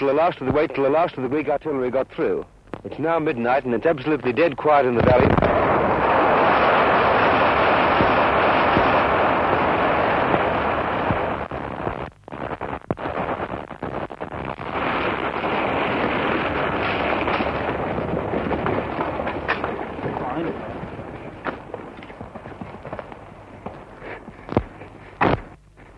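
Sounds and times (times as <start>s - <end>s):
speech: 0.0s - 5.7s
explosion blowing up a section of road in a valley: 5.0s - 11.8s, 14.4s - 24.3s
sharp cracks from explosion: 5.0s - 25.9s.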